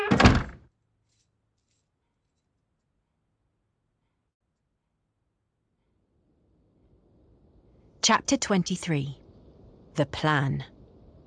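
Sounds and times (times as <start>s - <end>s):
bedroom door swinging shut with a thunk: 0.0s - 0.6s
speech: 8.0s - 9.2s, 10.0s - 10.7s.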